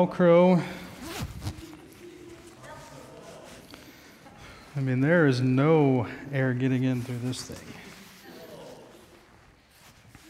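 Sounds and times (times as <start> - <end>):
speech: 0.0 - 1.3, 4.8 - 7.8
coat zipper rasping: 1.0 - 1.7.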